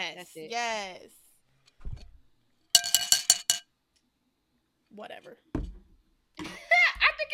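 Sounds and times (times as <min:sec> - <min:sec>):
speech: 0:00.2 - 0:01.2, 0:04.9 - 0:05.5
glasses clinking together in a toast: 0:02.8 - 0:03.6.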